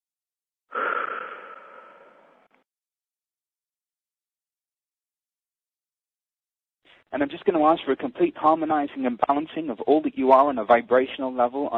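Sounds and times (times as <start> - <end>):
deep airy breath with soft wheezy tone: 0.7 - 2.6
speech: 7.0 - 11.7.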